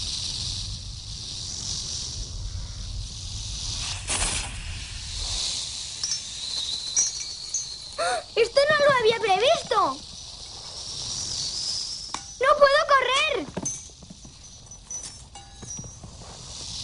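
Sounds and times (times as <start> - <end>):
snake hissing: 0.0 - 15.0, 16.0 - 16.8.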